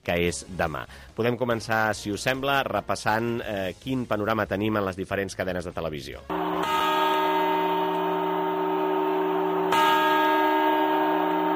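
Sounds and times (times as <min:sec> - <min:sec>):
speech: 0:00.1 - 0:06.7
church bells chiming at midnight on New Year's Eve: 0:06.3 - 0:11.5.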